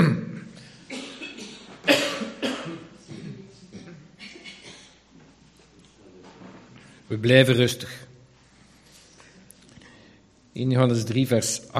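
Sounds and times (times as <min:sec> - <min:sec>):
person coughing: 0:00.0 - 0:05.0
throat clearing: 0:00.0 - 0:05.1
speech: 0:07.1 - 0:08.0, 0:10.6 - 0:11.7.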